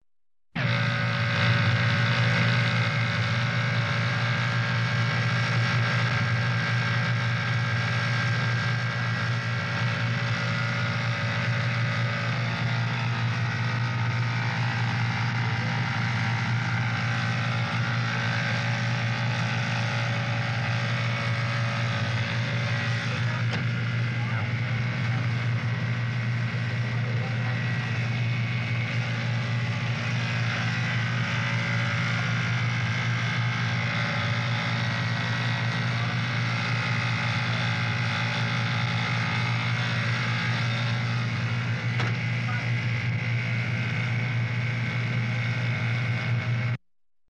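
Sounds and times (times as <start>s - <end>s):
electrical transformer humming: 0.6s - 46.8s.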